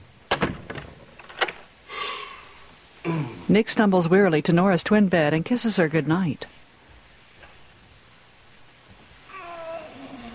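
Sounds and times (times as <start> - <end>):
bedroom door being shut and locked: 0.3 - 1.7
speech: 3.0 - 6.6.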